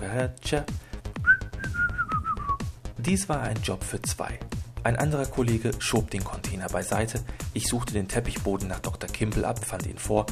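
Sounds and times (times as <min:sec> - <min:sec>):
speech: 0:00.1 - 0:00.8, 0:03.0 - 0:10.3
rhythmic low thumps: 0:00.7 - 0:10.3
person whistling a short melodic tune: 0:01.2 - 0:02.8.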